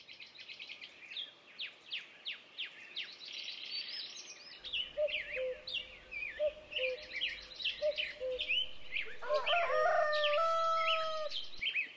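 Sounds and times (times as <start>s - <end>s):
chorus of chirping songbirds: 0.0s - 11.9s
rooster crowing: 8.6s - 11.6s.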